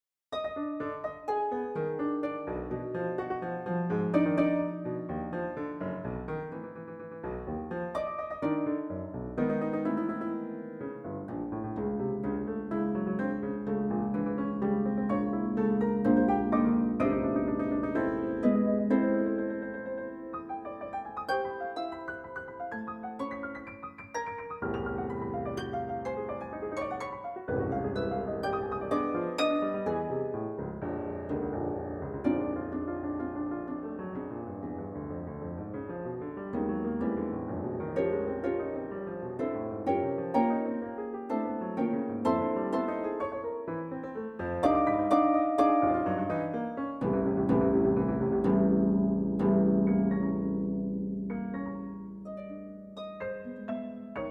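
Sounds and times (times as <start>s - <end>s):
piano playing bagatelles: 0.3s - 54.2s
harp playing bagatelles: 7.7s - 34.7s, 36.5s - 43.8s, 44.4s - 54.2s.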